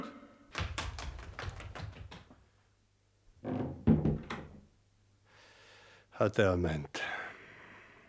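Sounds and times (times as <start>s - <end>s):
thrown axe thudding into a wooden door: 3.5s - 4.6s
speech: 6.2s - 7.0s.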